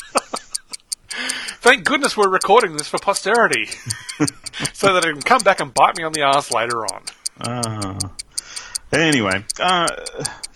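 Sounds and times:
laughter: 0.0 - 0.8, 3.4 - 5.8
clock ticking: 0.0 - 10.5
speech: 1.7 - 8.2, 8.9 - 10.5.

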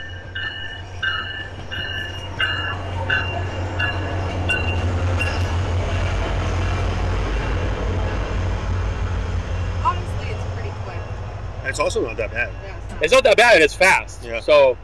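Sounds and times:
train rumbling past: 0.0 - 14.8
speech: 11.8 - 14.8.

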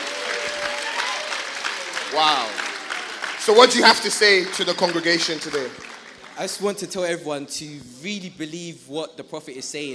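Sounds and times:
audience clapping: 0.0 - 7.2
speech: 2.1 - 2.6, 3.4 - 9.9.

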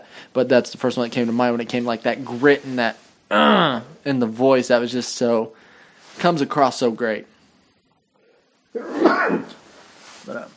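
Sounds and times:
speech: 0.3 - 5.6, 6.2 - 7.3
person sneezing: 8.8 - 9.6.

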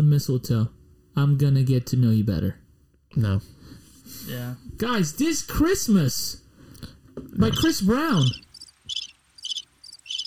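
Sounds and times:
speech: 0.1 - 8.4
cricket chirping: 7.4 - 10.2.

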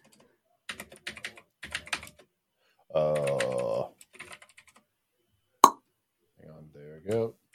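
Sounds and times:
computer keyboard typing: 0.0 - 2.3, 3.1 - 4.8.

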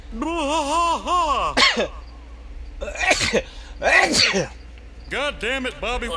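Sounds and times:
speech: 0.1 - 2.0, 3.3 - 6.1
person sneezing: 3.0 - 4.5.

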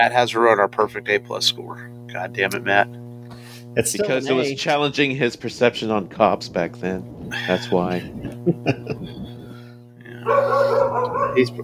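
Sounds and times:
speech: 0.0 - 3.0, 3.7 - 9.3, 11.4 - 11.6
steady low hum: 0.0 - 11.6
people laughing: 7.3 - 9.6
dog barking: 10.2 - 11.6.

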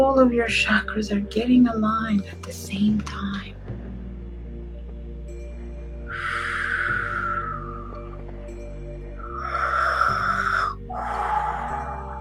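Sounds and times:
speech: 0.1 - 3.6
ambient drone: 4.0 - 12.2
birds calling: 6.1 - 8.5, 9.1 - 12.2.

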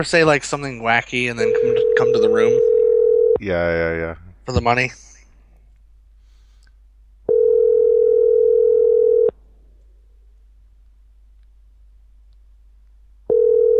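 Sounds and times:
speech: 0.0 - 2.7, 3.4 - 5.1
phone ringback tone on an outgoing call to a cell phone: 1.4 - 3.4, 7.3 - 9.3, 13.3 - 13.7.

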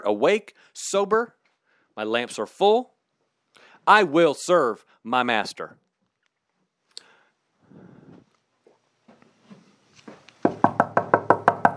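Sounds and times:
speech: 0.0 - 1.4, 2.0 - 2.9, 3.9 - 5.8
knocking on a door: 10.4 - 11.7.

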